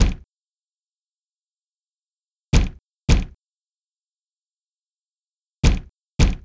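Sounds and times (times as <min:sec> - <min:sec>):
door pounding: 0:00.0 - 0:00.3, 0:02.5 - 0:03.4, 0:05.6 - 0:06.4.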